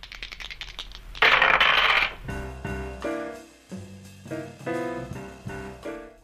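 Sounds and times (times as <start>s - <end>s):
dice rattling and clattering across a hard table surface: 0.0s - 2.2s.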